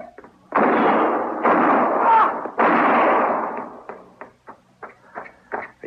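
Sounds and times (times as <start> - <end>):
gunshots fired in a standoff: 0.5 - 3.9.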